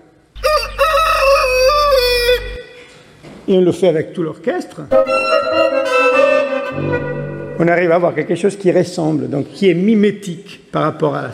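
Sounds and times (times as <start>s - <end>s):
faint low hum: 0.3s - 2.9s
rooster crowing: 0.4s - 2.8s
speech: 3.5s - 11.3s.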